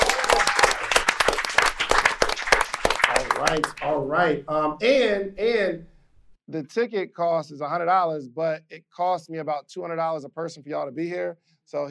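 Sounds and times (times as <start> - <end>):
audience applauding a guest: 0.0 - 4.0
speech: 3.4 - 5.9, 6.5 - 11.8.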